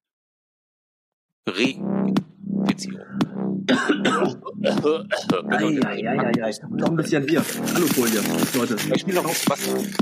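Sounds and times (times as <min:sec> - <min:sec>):
speech: 0:01.5 - 0:10.0
man coughing and clearing his throat: 0:03.7 - 0:05.7.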